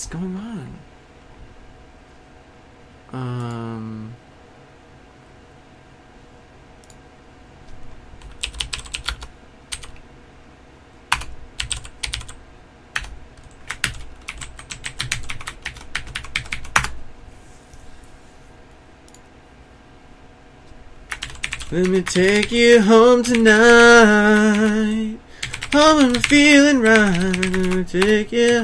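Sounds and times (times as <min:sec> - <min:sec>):
speech: 0:00.0 - 0:00.9, 0:03.1 - 0:04.2, 0:21.7 - 0:25.1, 0:25.7 - 0:28.6
typing a mobile phone number on a computer keyboard: 0:08.2 - 0:10.0, 0:11.1 - 0:12.4, 0:13.0 - 0:16.9, 0:21.1 - 0:22.6, 0:24.4 - 0:24.8, 0:25.4 - 0:28.6.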